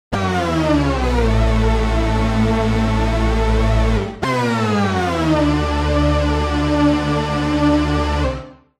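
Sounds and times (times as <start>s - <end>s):
Juno hoover oscillator lead synthesizer with sway: 0.1s - 8.6s.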